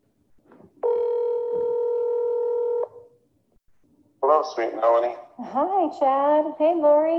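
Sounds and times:
faint noise: 0.1s - 7.1s
telephone ringback tone: 0.8s - 3.2s
speech: 4.4s - 7.1s.

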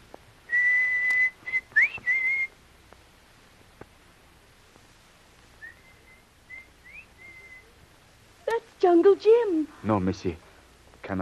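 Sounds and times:
signal whistle blown in the jungle: 0.5s - 2.5s, 5.6s - 7.7s
speech: 8.9s - 10.4s.

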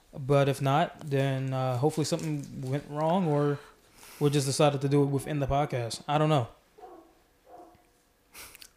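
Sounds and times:
speech: 0.1s - 6.6s
dog barking with short yelping barks: 6.8s - 7.9s.

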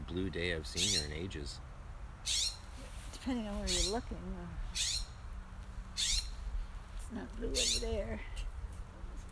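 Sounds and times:
low steady rumble of outdoor background: 0.0s - 9.3s
speech: 0.1s - 2.4s, 3.2s - 4.9s, 7.1s - 8.4s
harsh bird calls: 0.6s - 1.6s, 2.2s - 2.8s, 3.6s - 5.3s, 5.9s - 6.6s, 7.5s - 8.2s.

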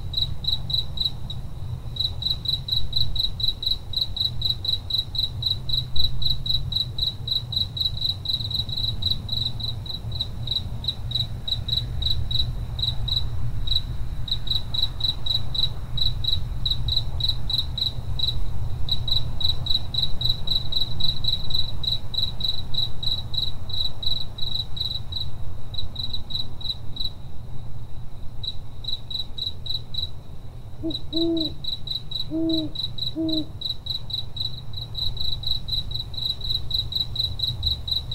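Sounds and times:
crickets trilling: 0.0s - 38.1s
owl hooting softly: 30.8s - 31.6s, 32.2s - 33.6s.

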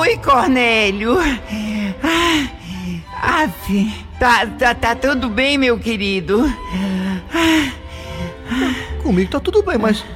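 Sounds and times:
speech: 0.1s - 2.6s, 3.2s - 7.8s, 8.5s - 10.1s
person panting heavily out of breath: 1.2s - 3.2s, 6.6s - 9.0s.

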